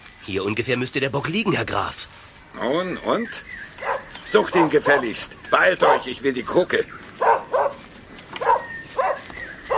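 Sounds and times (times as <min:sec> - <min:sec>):
speech: 0:00.2 - 0:03.6, 0:04.3 - 0:07.0
hunting dog barking and yelping: 0:03.8 - 0:05.2, 0:05.8 - 0:06.2, 0:07.2 - 0:09.7.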